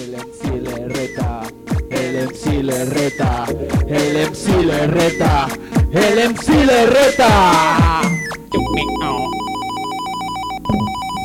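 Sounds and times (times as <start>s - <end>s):
speech: 0.1s - 1.4s, 2.2s - 8.2s
electronic telephone ringtone of rapid high beeps: 8.0s - 11.2s.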